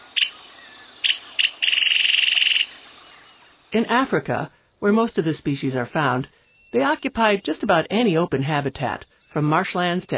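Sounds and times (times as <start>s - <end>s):
faint hiss: 0.0s - 10.1s
cisticola giving high sharp notes and a buzzing trill: 0.2s - 2.8s
speech: 3.7s - 10.1s.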